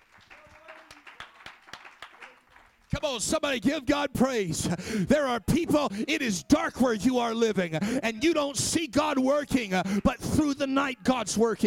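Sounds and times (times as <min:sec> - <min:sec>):
church audience clapping hands at a Sunday afternoon sermon: 0:00.0 - 0:03.4
speech: 0:02.9 - 0:11.6.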